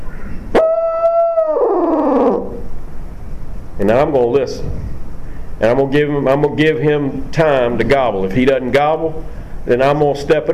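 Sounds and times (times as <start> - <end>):
owl hooter tube call hoot for turkey hunting: 0.1 - 2.7
speech: 3.8 - 4.9, 5.6 - 10.5.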